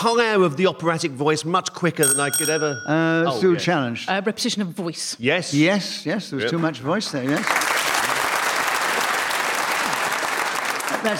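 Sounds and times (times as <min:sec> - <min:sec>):
speech: 0:00.0 - 0:07.7
audience clapping at a panel game after a correct challenge: 0:06.6 - 0:11.1.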